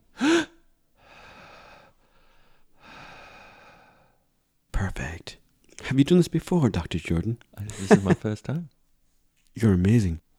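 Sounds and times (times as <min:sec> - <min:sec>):
fast inhales and exhales during a breathing exercise: 0:00.2 - 0:04.2
speech: 0:04.8 - 0:08.8, 0:09.6 - 0:10.2
laughter: 0:07.6 - 0:08.6.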